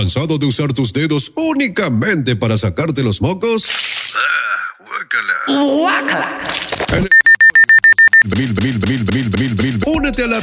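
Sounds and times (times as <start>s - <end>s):
speech: 0.0s - 7.3s, 8.2s - 10.4s
high-pitched alarm clock beeping: 7.0s - 8.2s.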